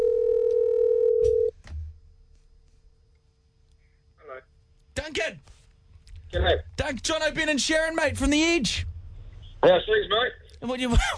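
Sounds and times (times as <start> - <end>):
telephone dial tone: 0.0 - 1.5
speech: 6.3 - 8.9, 9.6 - 11.1.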